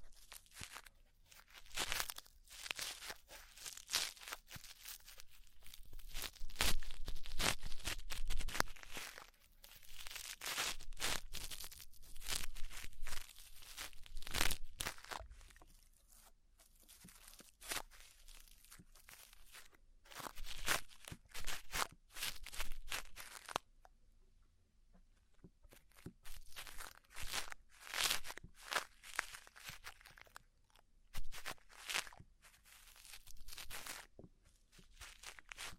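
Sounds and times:
crackly scratching and rustling during ear cleaning: 0:00.0 - 0:23.7, 0:24.9 - 0:35.7.

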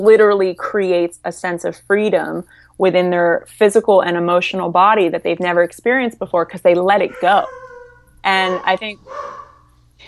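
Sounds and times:
speech: 0:00.0 - 0:07.6, 0:08.2 - 0:09.4
dog bark: 0:07.2 - 0:09.6.

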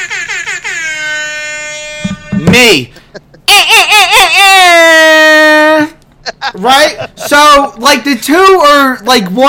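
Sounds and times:
electronic air horn from a phone DJ app: 0:00.0 - 0:02.7
laughter: 0:02.6 - 0:04.9, 0:05.7 - 0:07.7
speech: 0:02.6 - 0:05.6, 0:06.4 - 0:09.4.

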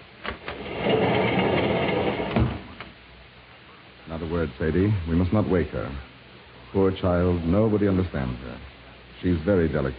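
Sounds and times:
apartment door in Toledo Ohio opening with clicks and creaking: 0:00.3 - 0:03.0
speech: 0:04.4 - 0:06.1, 0:06.7 - 0:09.9.

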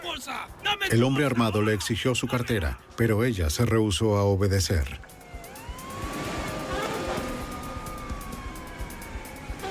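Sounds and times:
speech: 0:00.2 - 0:05.2
busy street traffic with rumbling engines: 0:05.0 - 0:09.6
police siren wailing in Cincinnati during a bank robbery getaway: 0:05.0 - 0:09.6.

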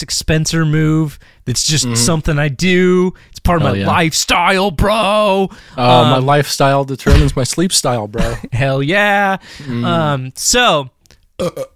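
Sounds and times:
speech: 0:00.0 - 0:11.7
brief murmured noises: 0:01.9 - 0:02.2, 0:09.7 - 0:10.2
loud drawn-out burp: 0:11.4 - 0:11.7
rough belch-like vocal sound: 0:11.4 - 0:11.7.

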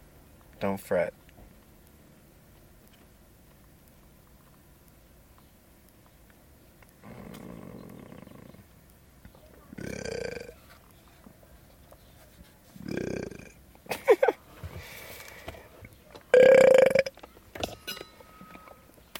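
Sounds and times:
speech: 0:00.6 - 0:01.2
loud low rumbling burps: 0:07.0 - 0:08.6, 0:09.7 - 0:10.6, 0:12.8 - 0:13.6, 0:16.3 - 0:17.2.

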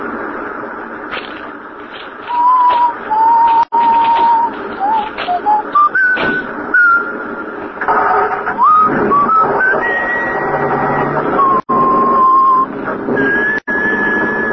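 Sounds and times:
person whistling a short tune: 0:02.3 - 0:07.2, 0:08.6 - 0:14.5.

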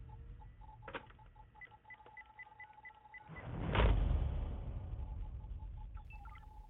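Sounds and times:
evenly spaced electronic beeps over a phone line: 0:00.0 - 0:03.5, 0:04.8 - 0:06.6.

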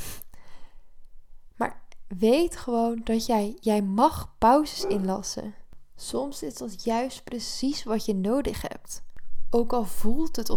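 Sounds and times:
speech: 0:01.6 - 0:10.5
dog nasal snort: 0:04.8 - 0:05.2.

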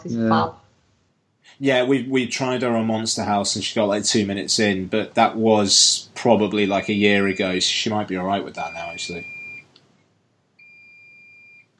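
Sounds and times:
speech: 0:00.0 - 0:00.6, 0:01.4 - 0:09.4
washing machine end-of-cycle electronic beep: 0:06.6 - 0:07.7, 0:08.6 - 0:09.7, 0:10.6 - 0:11.7.

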